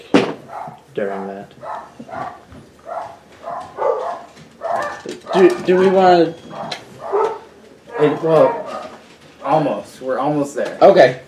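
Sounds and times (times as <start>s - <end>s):
dogs barking: 0.4s - 9.8s
speech: 1.0s - 2.4s, 5.4s - 6.4s, 8.0s - 8.7s, 9.4s - 11.2s.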